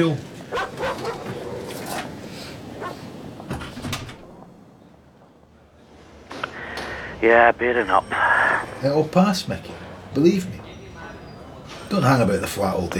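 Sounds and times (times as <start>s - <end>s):
speech: 0.0s - 1.2s, 7.2s - 10.6s, 11.9s - 12.9s
dog barking: 0.5s - 1.7s, 2.8s - 3.0s.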